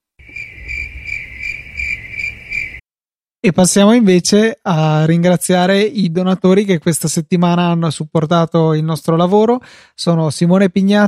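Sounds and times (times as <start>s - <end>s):
crickets chirping: 0.2s - 2.8s
speech: 3.4s - 11.0s.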